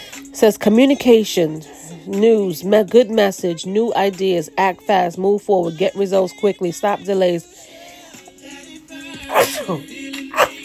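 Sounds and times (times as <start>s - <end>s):
speech: 0.4s - 7.7s, 9.3s - 10.0s
person sneezing: 9.3s - 10.6s.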